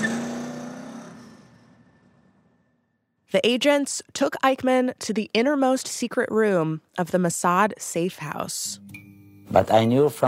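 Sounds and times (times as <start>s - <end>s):
car engine revving and driving away: 0.0s - 2.6s
speech: 3.3s - 10.2s.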